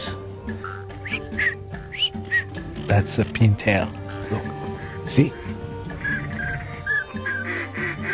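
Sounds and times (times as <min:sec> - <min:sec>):
green-headed mallard drake quacking to a female during a duck hunt in Colusa: 0:00.6 - 0:02.4, 0:06.0 - 0:08.1
speech: 0:02.9 - 0:05.6.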